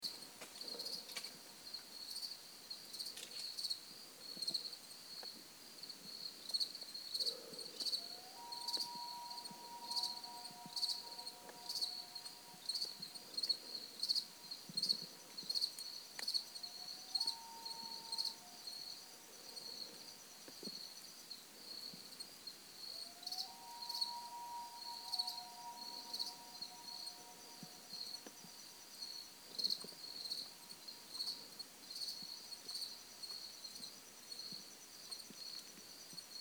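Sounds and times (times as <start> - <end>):
crickets chirping in early morning at a lake: 0.0 - 36.3
loon calling in early morning at a lake: 8.0 - 14.5, 16.5 - 19.1, 23.0 - 28.3.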